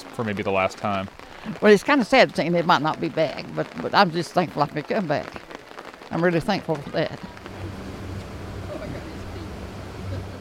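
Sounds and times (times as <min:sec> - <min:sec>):
wash of spray and wind: 0:00.0 - 0:10.4
speech: 0:00.2 - 0:05.5, 0:06.1 - 0:07.4
motorboat engine droning across open water on Fontana Lake: 0:07.3 - 0:10.4.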